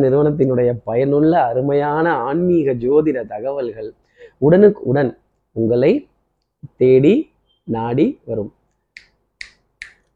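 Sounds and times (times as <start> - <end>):
speech: 0.0 - 6.1, 6.7 - 8.6
crisp finger snaps: 8.7 - 10.1.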